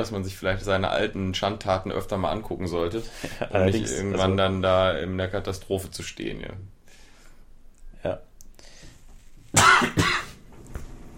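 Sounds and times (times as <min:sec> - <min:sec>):
speech: 0:00.0 - 0:06.8, 0:08.0 - 0:08.3, 0:09.5 - 0:10.2
person coughing harshly: 0:09.6 - 0:10.4.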